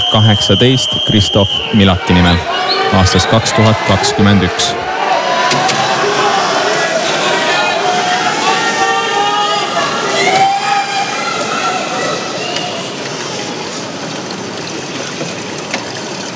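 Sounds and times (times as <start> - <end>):
shrill whistles: 0.0 - 3.0
horn-like tones: 0.0 - 4.9
arena crowd cheering at a swimming final: 0.0 - 14.1
speech: 0.1 - 4.9.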